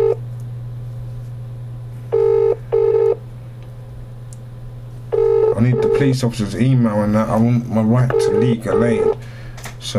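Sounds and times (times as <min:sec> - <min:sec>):
phone ringing tone heard down the line: 0:00.0 - 0:00.2, 0:02.1 - 0:03.2, 0:05.1 - 0:06.1, 0:08.0 - 0:09.2
low hum: 0:00.0 - 0:09.9
speech: 0:05.6 - 0:09.9.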